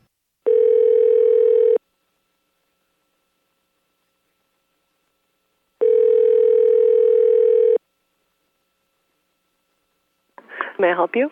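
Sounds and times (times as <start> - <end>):
telephone line tone before calling back: 0.4 - 1.8, 5.8 - 7.8
speech: 10.8 - 11.3.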